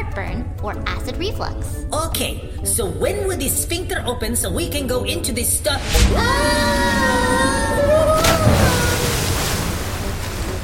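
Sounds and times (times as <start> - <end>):
speech: 0.2 - 8.8
wet sloshing inside a stomach: 8.2 - 10.6.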